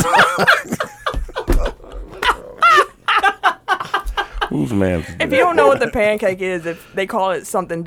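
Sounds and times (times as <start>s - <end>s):
laughter: 0.0s - 6.4s
speech: 0.4s - 0.6s, 4.7s - 7.8s
dog growling: 1.5s - 2.9s.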